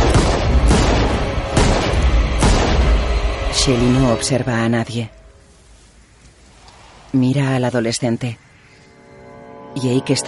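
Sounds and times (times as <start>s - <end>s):
pistol gunshots fired by a woman in a forest: 0.0s - 2.9s
speech: 3.6s - 5.2s, 7.1s - 8.5s, 9.8s - 10.2s.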